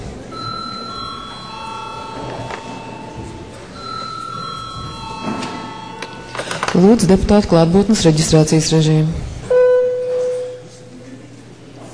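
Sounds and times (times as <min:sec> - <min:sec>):
chairman's bell rung in a council session: 0:00.3 - 0:07.1
speech: 0:06.8 - 0:09.2.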